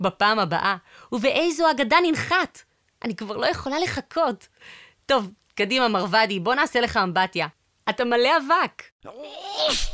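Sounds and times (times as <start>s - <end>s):
speech: 0.0s - 9.9s
sneeze: 9.2s - 9.9s.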